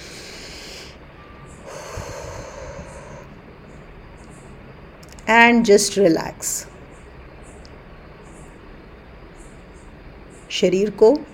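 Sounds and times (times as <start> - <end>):
slow deep breathing in through the nose and out through the mouth: 0.0 - 1.0, 1.6 - 3.4
speech: 5.3 - 6.7, 10.6 - 11.3.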